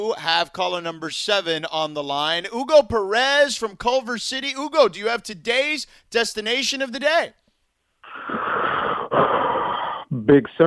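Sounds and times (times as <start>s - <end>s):
speech: 0.0s - 7.4s, 10.1s - 10.6s
caller's sharp breathy gasp over a phone line: 8.0s - 10.1s.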